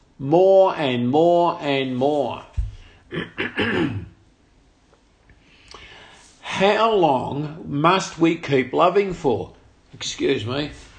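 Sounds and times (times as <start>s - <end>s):
speech: 0.2s - 2.5s, 3.1s - 4.1s, 6.5s - 10.9s
person clearing throat: 3.1s - 4.2s.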